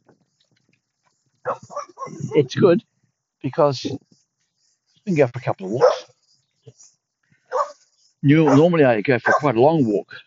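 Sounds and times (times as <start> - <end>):
dog barking during a walk: 1.4 - 2.3, 5.6 - 6.1, 7.5 - 7.8, 8.4 - 9.6
speech: 2.3 - 4.1, 5.0 - 6.0, 8.2 - 10.2.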